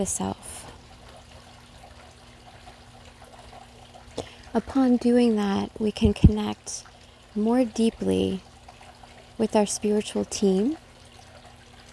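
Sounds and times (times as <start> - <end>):
speech: 0.0 - 0.7, 4.2 - 8.5, 9.4 - 10.8
water trickling in a garden: 0.0 - 11.9.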